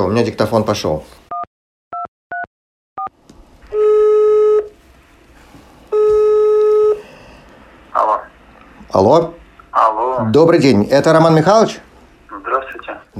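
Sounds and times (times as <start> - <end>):
speech: 0.0 - 1.2, 8.9 - 9.4, 10.0 - 11.9
telephone ringing tones: 3.7 - 4.7, 5.9 - 7.0.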